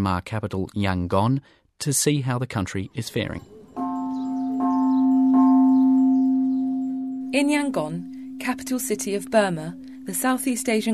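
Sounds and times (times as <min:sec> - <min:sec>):
speech: 0:00.0 - 0:03.6, 0:07.3 - 0:10.9
faint chirping: 0:02.9 - 0:10.9
prayer bells ringing at the Shwedagon Pagoda in Yangon Myanmar: 0:03.0 - 0:10.9.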